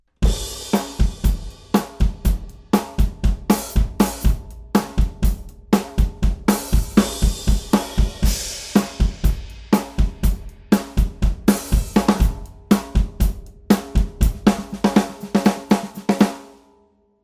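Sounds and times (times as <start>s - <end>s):
maple drum kit snare drums: 0.2s - 16.5s.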